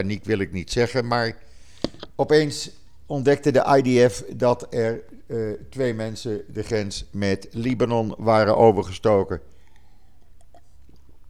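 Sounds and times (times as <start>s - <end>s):
speech: 0.0s - 1.5s, 2.1s - 9.5s
sipping water with mouth clicks and soft slurp: 0.0s - 11.2s
small swallow: 1.4s - 3.1s, 6.4s - 11.2s.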